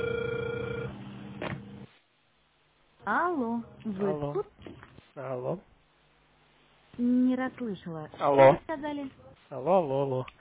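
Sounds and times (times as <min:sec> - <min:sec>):
telephone ringing tone on a line while a call to technical support connects: 0:00.0 - 0:01.0
speech: 0:03.1 - 0:04.5, 0:05.2 - 0:05.7, 0:07.0 - 0:10.3.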